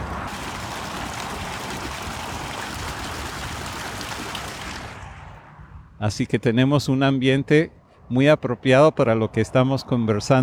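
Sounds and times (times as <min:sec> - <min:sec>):
water fountain splashing in a park: 0:00.0 - 0:05.4
speech: 0:06.0 - 0:10.4.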